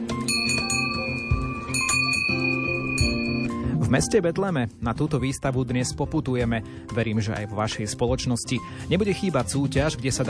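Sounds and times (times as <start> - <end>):
small hand bell rung to open a Christmas-season program: 0.2 - 3.6
speech: 3.9 - 10.2.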